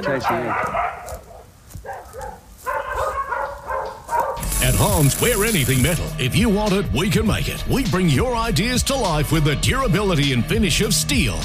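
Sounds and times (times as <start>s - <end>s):
speech: 0.0s - 1.2s, 4.8s - 11.4s
several dogs barking and yipping: 0.0s - 5.8s.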